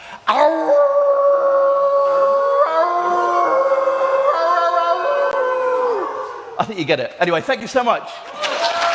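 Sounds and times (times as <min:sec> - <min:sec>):
person howling like a wolf: 0:00.3 - 0:06.5
speech: 0:06.6 - 0:08.8.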